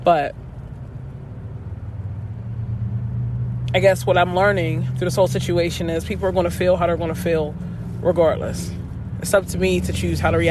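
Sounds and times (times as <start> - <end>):
speech: 0.0 - 0.4, 3.7 - 10.4
car engine passing: 0.0 - 10.4
steady low road rumble from traffic: 0.0 - 10.4.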